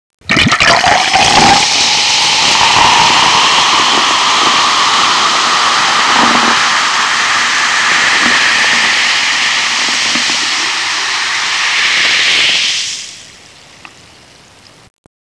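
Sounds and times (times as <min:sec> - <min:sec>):
liquid pouring: 0:00.3 - 0:13.4.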